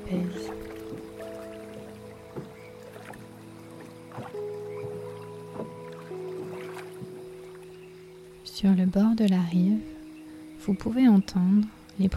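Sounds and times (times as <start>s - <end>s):
steady low wash of lake water: 0.0s - 7.9s
rowboat rocking on a lake, wooden creaks and knocks: 0.0s - 8.4s
speech: 8.6s - 9.9s, 10.6s - 12.1s.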